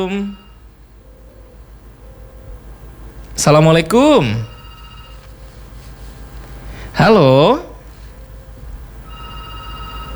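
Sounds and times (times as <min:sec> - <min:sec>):
speech: 0:00.0 - 0:00.4, 0:03.4 - 0:04.5, 0:07.0 - 0:07.7
electronic ringing tone of an outgoing WhatsApp phone call: 0:00.0 - 0:00.8, 0:03.8 - 0:06.0, 0:08.4 - 0:10.1
low hum: 0:00.0 - 0:10.1.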